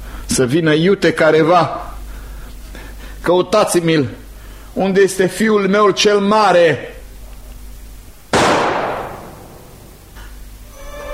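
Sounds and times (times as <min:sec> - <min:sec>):
speech: 0:00.4 - 0:01.9, 0:03.2 - 0:04.2, 0:04.8 - 0:07.0
gunshot: 0:08.3 - 0:09.9.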